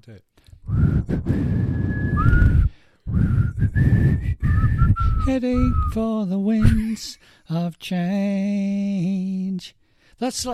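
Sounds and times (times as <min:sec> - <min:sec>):
speech: 0:00.0 - 0:01.4, 0:03.7 - 0:10.5
person whistling a tune: 0:00.7 - 0:06.0, 0:06.6 - 0:07.0.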